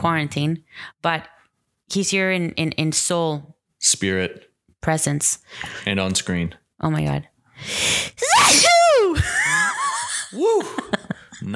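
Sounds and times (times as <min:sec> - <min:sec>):
speech: 0:00.0 - 0:08.7, 0:10.3 - 0:11.5
sharp sucked-in breath: 0:07.6 - 0:09.1
person sneezing: 0:08.2 - 0:09.3.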